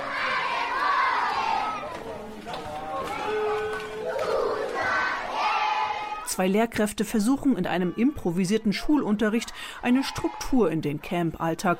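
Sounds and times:
crowd of children shouting in a refugee camp: 0.0s - 6.3s
speech: 6.4s - 11.7s.

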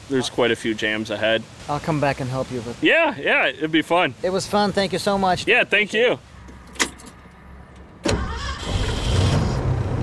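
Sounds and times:
speech: 0.1s - 6.3s
car engine and road noise while driving: 6.0s - 10.0s.

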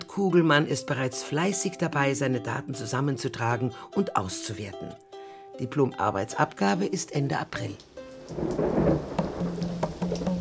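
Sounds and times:
speech: 0.2s - 9.7s
steady rain with patter of raindrops: 7.4s - 10.3s
low thunder rolling: 8.2s - 10.3s.

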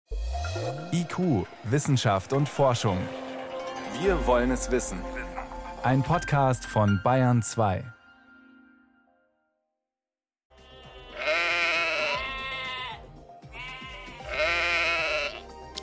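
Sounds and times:
speech: 0.7s - 3.2s, 4.0s - 5.2s, 5.8s - 8.0s
sheep bleating: 10.5s - 15.5s.

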